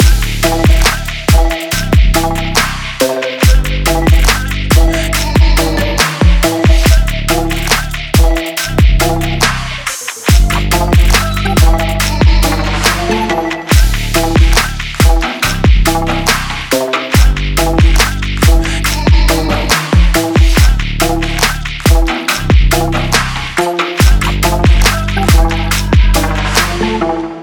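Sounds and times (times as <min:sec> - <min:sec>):
stylish background music: 0:00.0 - 0:27.4.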